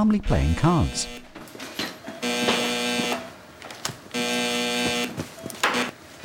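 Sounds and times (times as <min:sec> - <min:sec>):
speech: 0:00.0 - 0:01.2
electronic alarm buzzing in an ITU set off by patients: 0:00.1 - 0:01.5, 0:02.1 - 0:03.4, 0:04.1 - 0:06.0.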